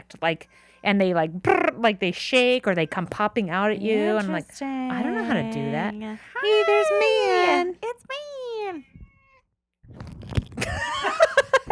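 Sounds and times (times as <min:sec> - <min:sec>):
speech: 0:00.1 - 0:08.9
cat meowing: 0:09.0 - 0:09.5
rustling handling noise: 0:09.9 - 0:10.8
laughter: 0:10.6 - 0:11.6.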